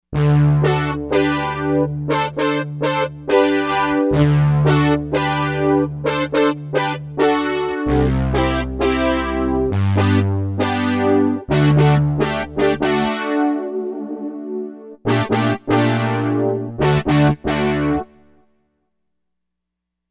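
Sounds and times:
poly brass synth: 0:00.2 - 0:18.4.

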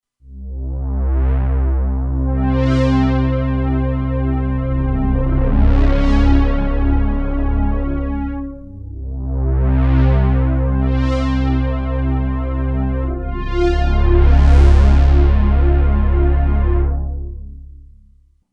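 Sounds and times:
ominous Roland Alpha Juno-2 synthesizer: 0:00.3 - 0:18.3.

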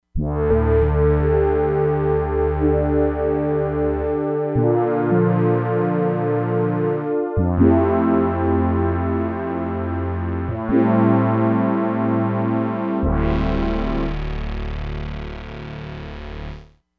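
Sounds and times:
inverted synthesizer background: 0:00.2 - 0:16.7.

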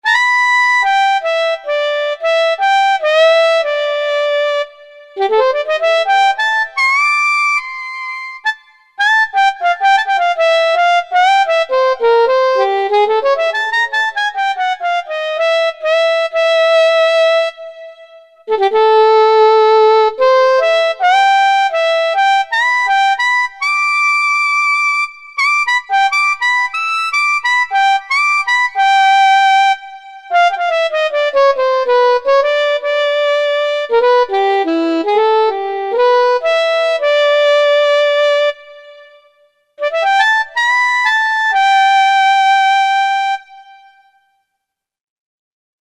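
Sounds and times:
soprano saxophone: 0:00.0 - 0:44.2.

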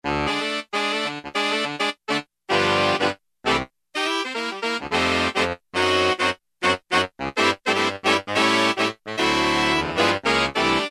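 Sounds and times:
synthesizer octave saxophone patch: 0:00.0 - 0:10.8.

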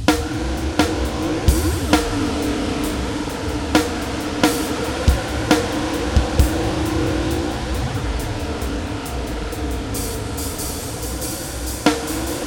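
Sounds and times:
spinning synth effect from a Roland DEP-5 factory patch: 0:00.1 - 0:12.4.

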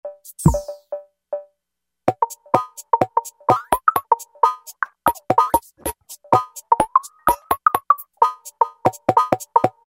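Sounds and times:
house and electronic music synth patches: 0:02.1 - 0:09.8.

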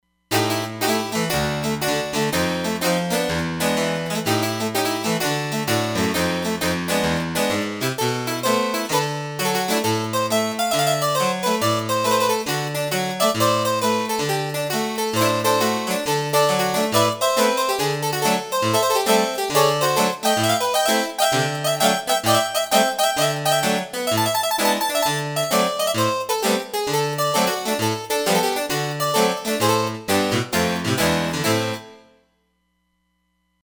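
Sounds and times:
Roland Fantom XR harpsichord: 0:00.3 - 0:32.2.

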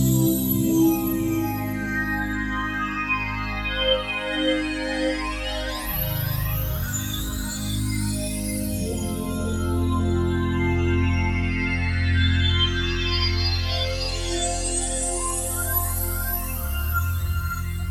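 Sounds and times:
Roland JD-990 synthesizer wash: 0:00.2 - 0:17.8.

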